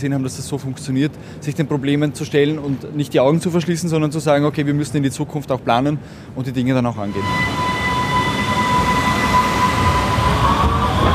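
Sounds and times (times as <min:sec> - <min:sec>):
speech: 0:00.0 - 0:07.7
subway train rumbling through an underground station: 0:00.0 - 0:11.1
thin high electric whine: 0:07.1 - 0:11.1.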